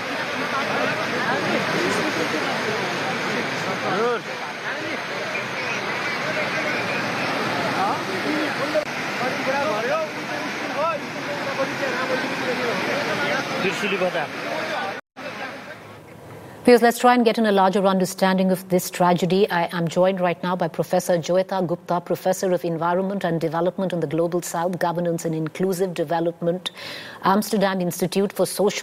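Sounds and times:
floodwater rushing through the streets and buildings of the Trishuli area in Nepal: 0:00.0 - 0:16.0
speech: 0:11.7 - 0:14.6, 0:16.7 - 0:28.8.

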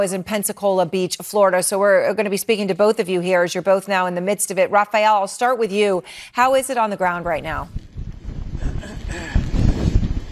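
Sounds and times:
speech: 0:00.0 - 0:07.9
strong hurricane wind buffeting the microphone at Pensacola Beach Florida: 0:07.1 - 0:10.2.

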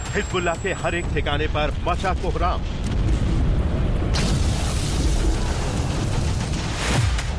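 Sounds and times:
speech: 0:00.1 - 0:03.0
bombs exploding in air strikes in Lebanon: 0:01.3 - 0:07.2.

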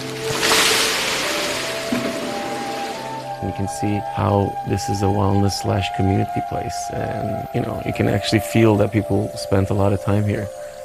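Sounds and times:
shower water running at a wellness bathhouse: 0:00.0 - 0:03.4
speech: 0:03.4 - 0:10.6.

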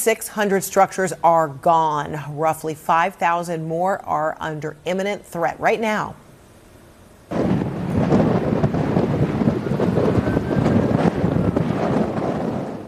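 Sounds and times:
speech: 0:00.0 - 0:06.2
strong wind roaring at a wildfire in Washington state: 0:07.3 - 0:12.8.

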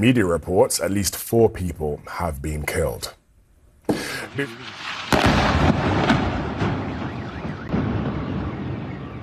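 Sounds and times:
speech: 0:00.0 - 0:03.2, 0:04.4 - 0:06.2
explosions in the port city of Bandar Abbas: 0:04.2 - 0:09.2
faint alarm wailing: 0:06.5 - 0:09.2.

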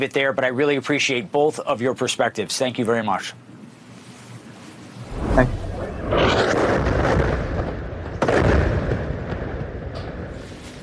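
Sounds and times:
speech: 0:00.0 - 0:03.5
rumbling roar of debris: 0:05.1 - 0:08.3
heavy boom: 0:05.1 - 0:09.7
explosion ripping through a building: 0:05.1 - 0:10.0.

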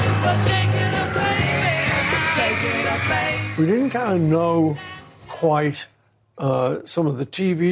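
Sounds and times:
huge crowd of teenagers screaming: 0:00.0 - 0:04.4
speech: 0:00.2 - 0:00.7, 0:02.5 - 0:07.7.

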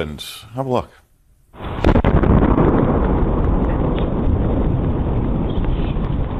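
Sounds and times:
speech: 0:00.0 - 0:01.0
double sonic boom of meteor entering atmosphere: 0:01.6 - 0:06.3
heavy sustained rumble: 0:01.6 - 0:06.3.

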